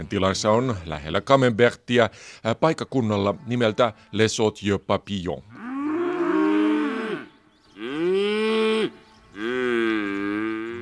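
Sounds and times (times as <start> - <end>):
speech: 0.0 - 5.6
cow mooing in a meadow: 5.5 - 10.8.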